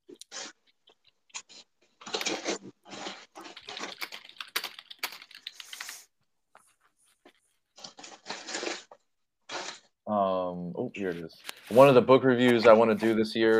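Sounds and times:
typing on a computer keyboard for an internet search: 3.5 - 6.0
speech: 10.8 - 13.5.

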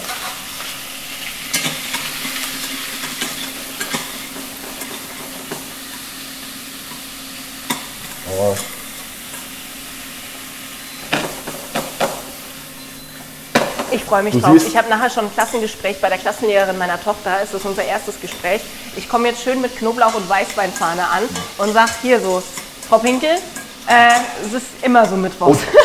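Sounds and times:
calamari frying in a hot pan: 0.0 - 25.8
speech: 8.5 - 8.8, 14.0 - 25.8.

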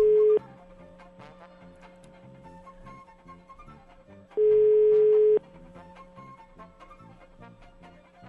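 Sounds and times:
telephone ringback tone while calling: 0.0 - 0.4, 4.4 - 5.4.

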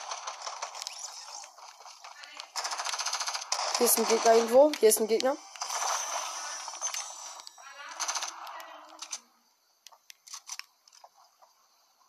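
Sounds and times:
video game automatic gunfire: 0.0 - 9.1
noisy crackling backdrop: 0.0 - 12.0
speech: 3.8 - 5.5.

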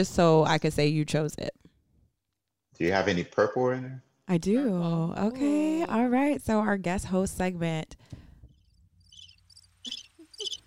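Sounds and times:
speech: 0.0 - 1.6, 2.8 - 8.2
crickets chirping: 8.5 - 10.6.

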